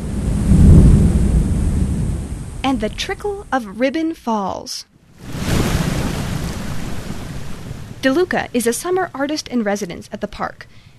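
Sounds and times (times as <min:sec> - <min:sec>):
thunder rumbling in a canyon: 0:00.0 - 0:03.6, 0:05.2 - 0:08.8
speech: 0:02.7 - 0:05.3, 0:08.0 - 0:10.9.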